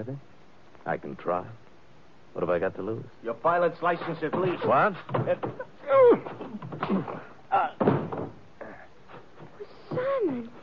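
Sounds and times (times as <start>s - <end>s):
speech: 0.0s - 1.6s, 2.3s - 8.0s
scuffle: 3.8s - 10.6s
heavy thuds of man punching another man on the jaw: 4.0s - 8.5s.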